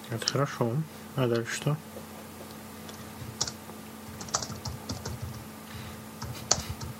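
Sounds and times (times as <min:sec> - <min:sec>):
speech: 0:00.1 - 0:01.9
forceful typing on a computer keyboard: 0:03.3 - 0:03.6, 0:04.2 - 0:05.4, 0:06.2 - 0:06.9.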